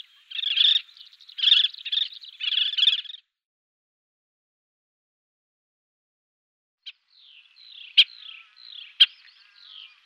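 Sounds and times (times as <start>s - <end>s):
collared pratincole harsh chattering calls: 0.0s - 3.3s, 7.6s - 10.0s.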